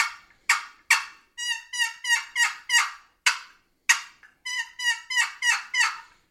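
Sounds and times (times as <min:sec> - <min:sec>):
turkey box call cutting and yelping: 0:00.0 - 0:06.1.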